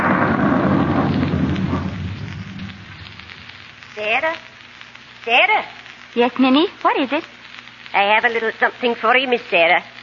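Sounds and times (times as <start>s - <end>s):
heavy rolling rumble of thunder: 0.0s - 3.6s
steady rain: 0.0s - 10.0s
speech: 4.1s - 4.5s, 5.2s - 7.3s, 7.9s - 9.9s.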